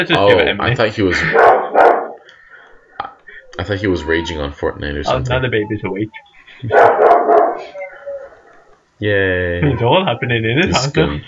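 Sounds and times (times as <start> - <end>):
speech: 0.0 - 1.6, 3.6 - 7.0, 9.0 - 11.2
dog barking: 1.3 - 2.2, 6.7 - 8.7.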